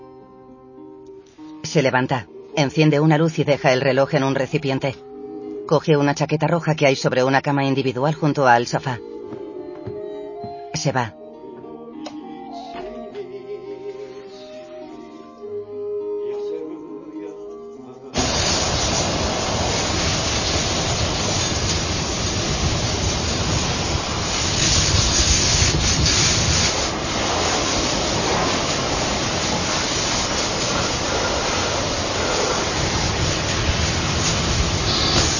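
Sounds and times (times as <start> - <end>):
speech: 1.7 - 5.1, 5.7 - 9.1, 10.8 - 11.2
sandblaster spraying through its hose: 18.2 - 35.3.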